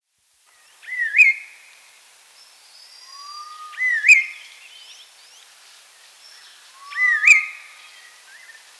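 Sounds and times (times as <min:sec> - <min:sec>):
Chestnut-crowned laughingthrush giving a rising-falling whistled call: 0:03.0 - 0:04.6, 0:06.8 - 0:08.6.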